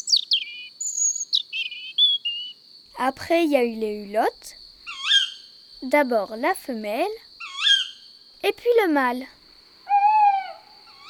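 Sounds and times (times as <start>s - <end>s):
European robin singing high-pitched in a forest: 0.0s - 2.6s, 4.9s - 5.6s, 7.4s - 8.3s, 9.9s - 11.0s
speech: 3.0s - 4.6s, 5.8s - 7.3s, 8.4s - 9.4s.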